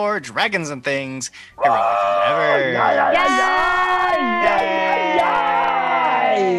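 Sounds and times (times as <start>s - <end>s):
speech: 0.0s - 5.5s, 6.4s - 6.5s
group of people yelling and whooping: 1.6s - 6.5s.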